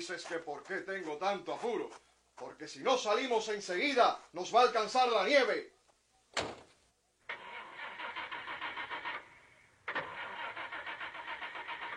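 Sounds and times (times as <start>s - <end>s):
speech: 0.0s - 6.6s
old car engine cranking and stalling: 7.3s - 11.9s.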